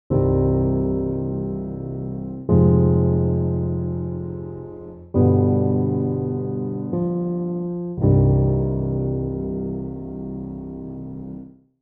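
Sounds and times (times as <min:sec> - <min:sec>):
piano D notes: 0:00.1 - 0:11.6.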